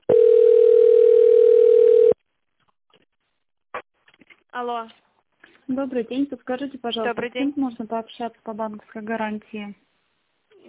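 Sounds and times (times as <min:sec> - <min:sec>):
telephone ringback tone during a call transfer: 0:00.1 - 0:02.2
speech: 0:04.6 - 0:05.0, 0:05.7 - 0:09.8.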